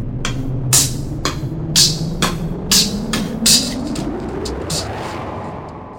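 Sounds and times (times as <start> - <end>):
thin lo-fi drum machine beat with snare and hat hits: 0.3 - 4.9.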